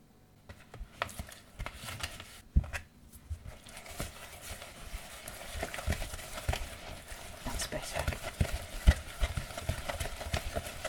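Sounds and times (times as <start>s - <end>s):
egg white being mixed in a bowl for peppermint drops: 0.5s - 10.8s.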